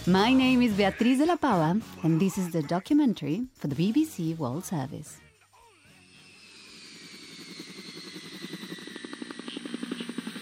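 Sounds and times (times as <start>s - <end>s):
speech: 0.0s - 5.2s
helicopters roaring over jungle and rice paddies in Vietnam during the war: 6.0s - 10.3s.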